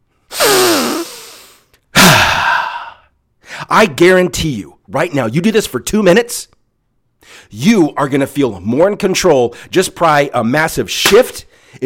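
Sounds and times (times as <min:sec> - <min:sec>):
deep inhale and forceful exhale in a breathing exercise: 0:00.0 - 0:03.7, 0:07.2 - 0:07.5, 0:11.5 - 0:11.8
speech: 0:03.7 - 0:06.5, 0:07.3 - 0:11.8.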